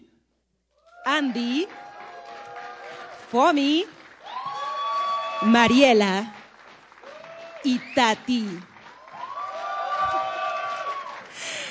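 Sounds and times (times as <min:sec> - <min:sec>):
high-pitched whoops and shouts: 0:00.8 - 0:03.3, 0:04.2 - 0:05.8, 0:07.0 - 0:07.7, 0:09.0 - 0:11.3
crowd cheering as a band is welcomed: 0:00.8 - 0:11.6
speech: 0:01.1 - 0:01.8, 0:03.3 - 0:04.0, 0:05.4 - 0:06.4, 0:07.6 - 0:08.7.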